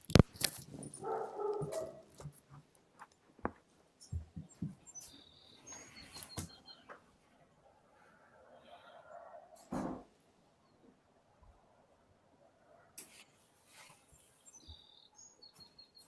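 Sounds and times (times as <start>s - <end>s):
outdoor noise: 0.0s - 16.0s
dog barking: 0.9s - 2.1s
faint chirping: 4.0s - 9.6s, 14.0s - 16.0s.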